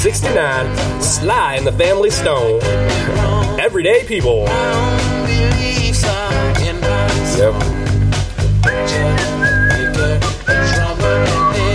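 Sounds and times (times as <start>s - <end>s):
speech: 0.0s - 7.9s
full band playing music with drums and bass: 0.0s - 11.7s
melodic whistle: 8.6s - 11.7s.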